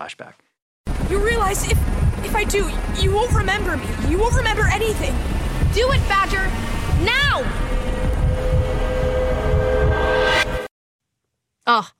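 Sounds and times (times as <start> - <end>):
speech: 0.0 - 0.5, 1.1 - 7.9, 11.7 - 11.9
train-like rumble with deep low-end churning: 0.9 - 10.2
sustained tonal whine: 0.9 - 10.7.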